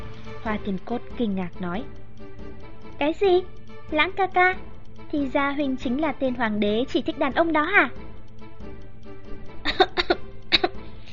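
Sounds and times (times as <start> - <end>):
speech: 0.4 - 2.0, 3.0 - 8.0
man coughing dryly: 9.7 - 10.8.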